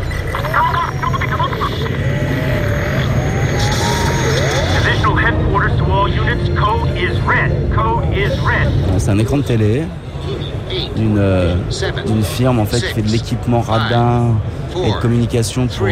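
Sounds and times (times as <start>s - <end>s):
small drone hovering with a steady motorized buzz: 0.0s - 10.2s
hum: 0.0s - 15.2s
busy mix of indistinct voices: 0.0s - 15.9s
speech: 9.1s - 10.1s, 10.8s - 15.9s.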